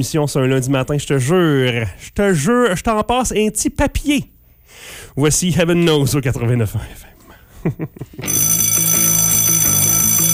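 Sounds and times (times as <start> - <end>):
speech: 0.0 - 8.7
bell ringing in a bedroom: 8.3 - 10.3.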